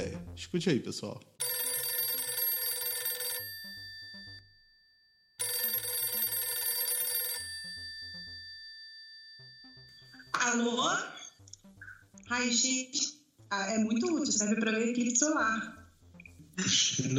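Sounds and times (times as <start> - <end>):
speech: 0.4 - 1.3, 12.3 - 15.8, 16.6 - 17.1
telephone ringing during a call: 1.4 - 10.4.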